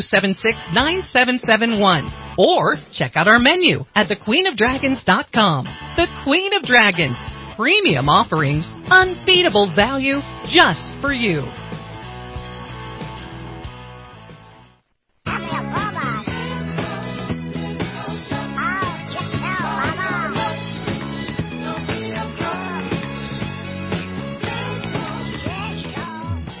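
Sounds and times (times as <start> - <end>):
speech: 0.0 - 11.6
bouncy upbeat disco-style music bumper: 0.0 - 14.6, 15.2 - 26.5
laughter: 15.3 - 16.5, 19.4 - 20.4
duck-like quacking vocals: 18.4 - 20.6.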